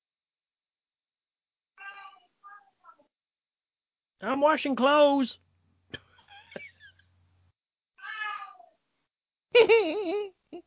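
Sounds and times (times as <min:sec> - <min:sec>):
cat meowing: 0:01.8 - 0:02.7, 0:08.0 - 0:08.8
speech: 0:04.2 - 0:05.4
laughter: 0:06.0 - 0:07.1, 0:09.6 - 0:10.6.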